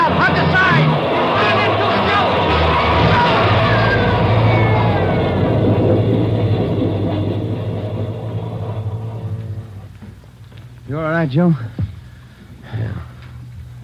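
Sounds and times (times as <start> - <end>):
faint screeching metallic tones of a subway train: 0.0 - 10.4
subway train roaring past in a tunnel: 0.0 - 13.8
speech: 11.2 - 11.7.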